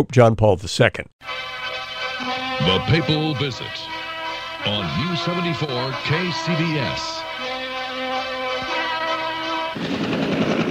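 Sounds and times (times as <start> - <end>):
speech: 0.0 - 1.6, 2.2 - 4.0, 4.6 - 7.3, 9.8 - 10.2
helicopter engine whine: 1.3 - 10.7
helicopter rotor chop: 4.7 - 10.7.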